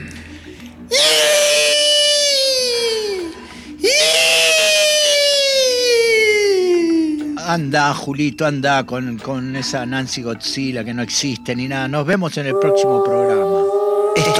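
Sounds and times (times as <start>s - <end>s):
person screaming shrilly in terror: 0.9s - 6.9s, 12.5s - 14.3s
person gasping throatily: 3.3s - 3.8s
speech: 7.5s - 14.3s.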